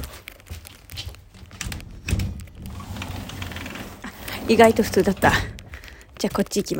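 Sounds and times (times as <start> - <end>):
window being slid open: 1.4 - 5.7
speech: 4.5 - 5.6, 6.2 - 6.7.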